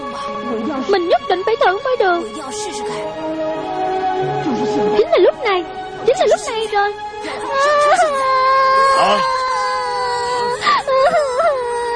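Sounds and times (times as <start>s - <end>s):
speech: 0.6s - 8.4s, 9.0s - 9.4s
person crying in a wavering wail with sobs: 7.4s - 11.9s.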